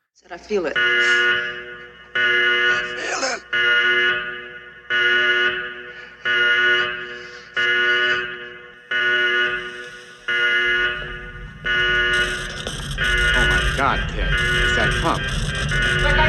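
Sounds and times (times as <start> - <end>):
speech: 0.2 - 4.0
harsh buzzing 70s-era panic alarm: 0.3 - 16.2
low rumble: 10.0 - 16.2.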